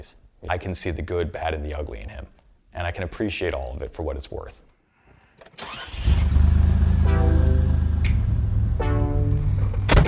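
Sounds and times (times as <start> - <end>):
speech: 0.0 - 4.7, 5.5 - 6.0
car engine cranking and catching: 5.5 - 10.0
car engine in a deep steady idle: 5.8 - 8.8.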